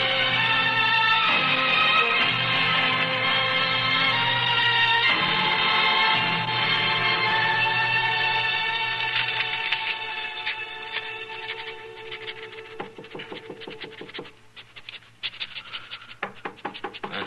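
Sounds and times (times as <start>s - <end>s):
musical drone: 0.0s - 14.2s
knocking on an office door: 12.8s - 14.2s, 16.2s - 17.2s.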